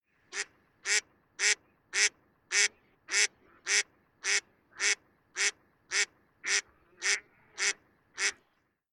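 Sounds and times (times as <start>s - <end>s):
mallard giving harsh buzzy quacks: 0.3s - 8.4s.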